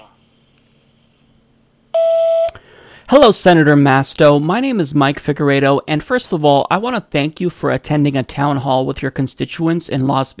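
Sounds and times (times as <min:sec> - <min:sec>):
room noise: 0:00.0 - 0:10.3
voicemail electronic beep tone: 0:02.0 - 0:02.5
speech: 0:03.1 - 0:10.3.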